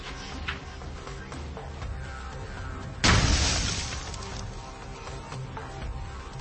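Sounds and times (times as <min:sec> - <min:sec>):
explosive burst of propellant ignited by tracer rounds: 0:03.0 - 0:04.3.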